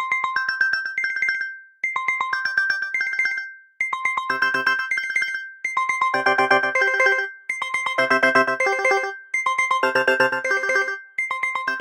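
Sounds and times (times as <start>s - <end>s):
Huawei Mate 40 RS Porsche Design phone alarm ringtone: 0.1s - 11.8s.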